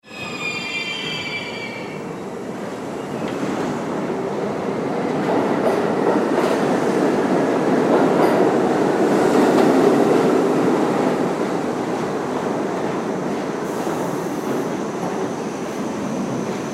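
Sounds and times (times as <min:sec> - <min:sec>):
subway train approaching, terminal interior rumble: 0:00.0 - 0:16.7.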